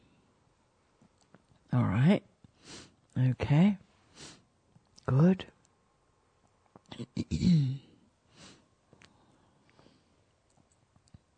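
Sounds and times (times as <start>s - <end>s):
speech: 1.7s - 4.4s, 5.1s - 5.6s, 6.9s - 7.8s
soft breath: 2.5s - 3.0s, 8.3s - 10.4s
small mouth sounds: 6.6s - 7.4s
single throaty cough: 7.0s - 7.9s.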